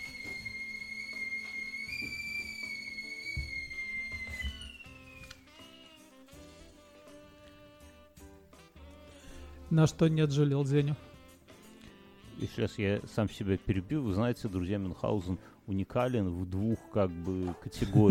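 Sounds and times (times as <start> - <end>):
police whistle blowing one long shrill blast: 0.0 - 6.4
speech: 9.7 - 11.1, 12.4 - 18.0.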